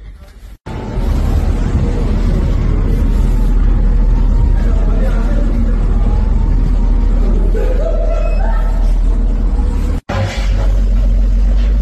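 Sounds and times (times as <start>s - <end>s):
heavy engine drone and tire roar of highway traffic: 0.0s - 11.8s
road traffic rumble on a highway: 0.0s - 11.8s
laughter: 7.0s - 9.5s.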